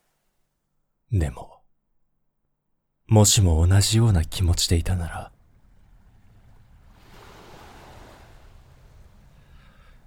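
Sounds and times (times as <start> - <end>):
speech: 1.1 - 1.6, 3.1 - 5.4
ocean waves: 4.9 - 10.0.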